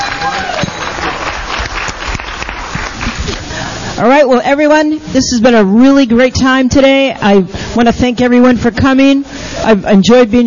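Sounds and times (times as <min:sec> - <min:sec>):
audience applause at a members' meeting: 0:00.0 - 0:03.5
speech: 0:04.0 - 0:10.4.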